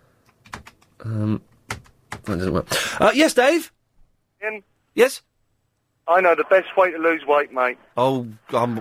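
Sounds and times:
computer keyboard keys being pressed: 0.2 - 2.4
speech: 1.0 - 1.5, 2.3 - 3.8, 4.4 - 5.3, 6.1 - 8.8.

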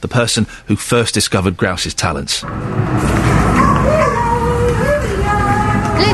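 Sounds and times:
speech: 0.0 - 3.3
unwanted and stray dogs barking and whining in animal rescue kennels: 3.4 - 5.3.

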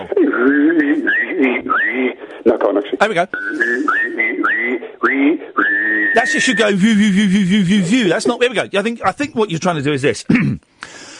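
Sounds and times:
person whistling and humming simultaneously: 0.0 - 2.2, 3.3 - 7.8
speech: 1.4 - 11.0.

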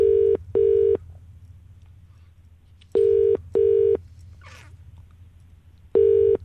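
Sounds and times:
telephone ringing tone in double pulses: 0.0 - 1.0, 3.0 - 4.0, 6.0 - 6.4
low hum: 0.0 - 6.4.

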